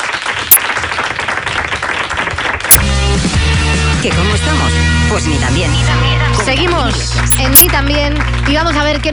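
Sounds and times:
crowd applauding: 0:00.0 - 0:03.0, 0:06.4 - 0:09.1
speech: 0:04.0 - 0:09.1.

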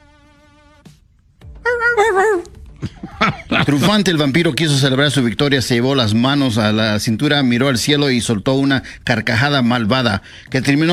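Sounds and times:
dog whimpering in fear while running away: 0:01.7 - 0:02.6
speech: 0:02.0 - 0:02.9, 0:03.5 - 0:10.9
laughter: 0:02.8 - 0:04.2.

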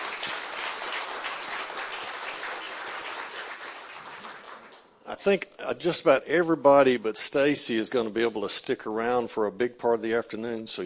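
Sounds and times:
crowd applauding with many hands clapping: 0:00.0 - 0:05.0
speech: 0:05.1 - 0:10.8.

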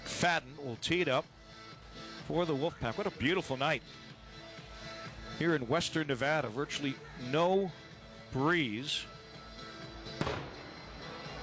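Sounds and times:
speech: 0:00.2 - 0:01.4, 0:02.3 - 0:04.0, 0:05.4 - 0:09.2
cannon shot at a night college football game: 0:10.2 - 0:10.8.

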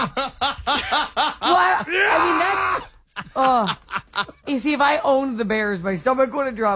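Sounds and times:
laughter: 0:00.0 - 0:04.6
person imitating a scream of pain: 0:01.7 - 0:03.0
speech: 0:03.4 - 0:06.7.

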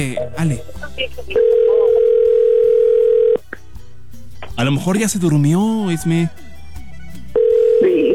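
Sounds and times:
speech: 0:00.0 - 0:02.0, 0:04.6 - 0:06.4
telephone ringback tone of an outgoing call: 0:01.4 - 0:03.4, 0:07.4 - 0:08.1.

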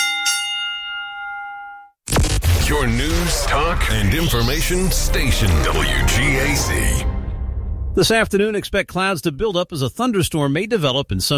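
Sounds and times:
bell struck and ringing: 0:00.0 - 0:02.0
speech: 0:02.7 - 0:07.1, 0:08.0 - 0:11.3.

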